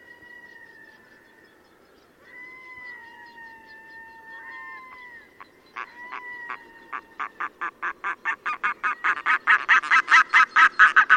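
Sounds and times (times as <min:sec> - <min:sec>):
red-throated loon wailing and cackling: 0:02.2 - 0:11.1.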